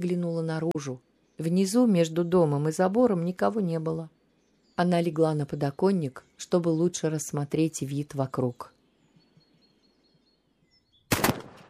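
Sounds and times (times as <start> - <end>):
speech: 0.0 - 4.2, 4.8 - 8.8
gunshot fired at a window: 11.1 - 11.6.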